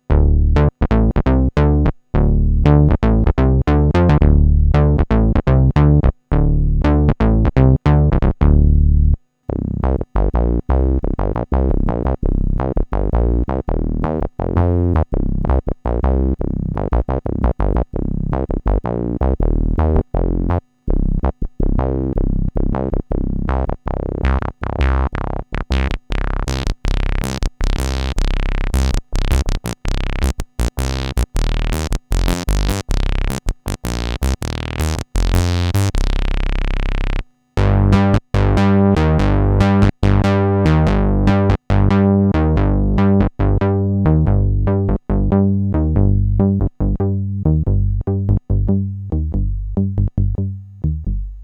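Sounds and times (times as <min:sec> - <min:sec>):
Jupiter-8 synth bass on Arturia Origin without effects: 0:00.0 - 0:51.4.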